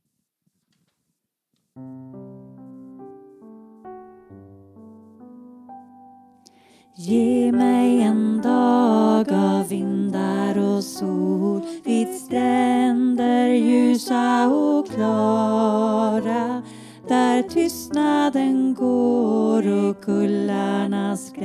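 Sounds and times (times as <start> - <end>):
alto voice singing: 7.0 - 21.4.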